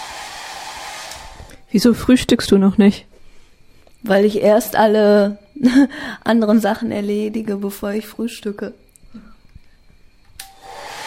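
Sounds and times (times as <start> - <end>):
hair dryer blow-drying hair: 0.0 - 1.6, 10.4 - 11.0
speech: 1.7 - 3.1, 4.0 - 9.3.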